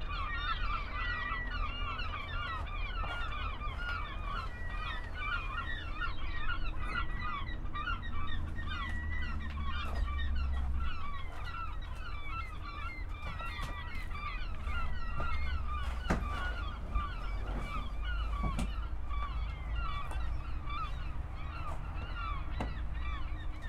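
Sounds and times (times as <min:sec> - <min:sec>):
many gulls giving short arched yelping calls: 0:00.0 - 0:23.6
steady low background rumble: 0:00.0 - 0:23.6.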